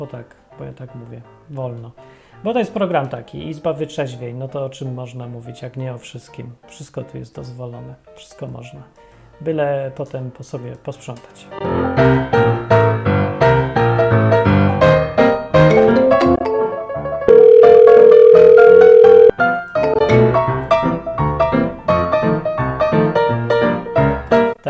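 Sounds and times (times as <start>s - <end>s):
speech: 0.0s - 12.8s
lively music: 11.6s - 24.6s
phone ringing tone from a test call: 17.3s - 20.1s.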